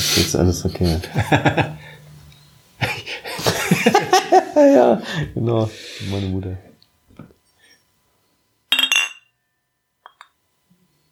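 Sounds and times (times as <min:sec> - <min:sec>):
speech: 0:00.2 - 0:01.9, 0:04.6 - 0:06.7
laughter: 0:00.8 - 0:02.0, 0:02.8 - 0:05.3
glasses clinking in a toast: 0:08.7 - 0:09.4, 0:10.0 - 0:10.4.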